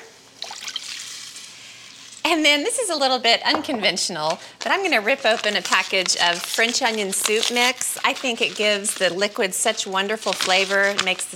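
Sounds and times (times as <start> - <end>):
water pouring into a cooking pot: 0.4 - 2.2
speech: 2.3 - 11.3.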